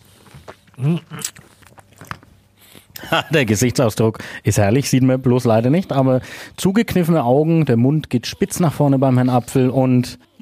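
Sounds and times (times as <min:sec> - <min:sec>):
soft chewing crunches of lemon: 0:00.0 - 0:03.0
crisp bite into a raw Amalfi lemon: 0:00.4 - 0:02.2
person murmuring: 0:00.8 - 0:01.4
speech: 0:00.8 - 0:01.4, 0:03.1 - 0:10.3.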